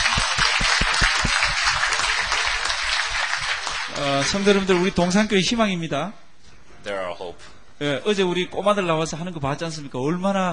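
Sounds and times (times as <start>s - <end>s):
church congregation applauding: 0.0s - 5.2s
speech: 4.0s - 6.2s, 6.8s - 10.5s.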